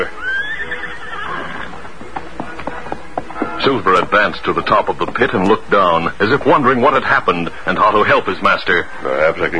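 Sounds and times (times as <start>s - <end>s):
horse whinnying: 0.0s - 1.8s
horse hoof clops: 0.8s - 7.3s
speech: 3.6s - 9.5s.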